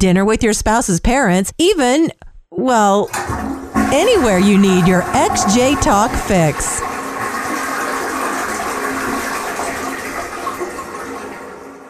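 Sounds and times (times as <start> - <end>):
speech: 0.0 - 6.9
toilet flushing: 3.1 - 11.8.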